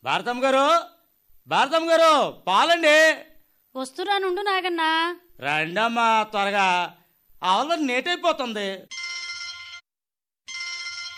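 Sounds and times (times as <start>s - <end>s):
speech: 0.0s - 0.9s, 1.5s - 9.0s
telephone bell ringing: 8.9s - 9.8s, 10.5s - 11.1s.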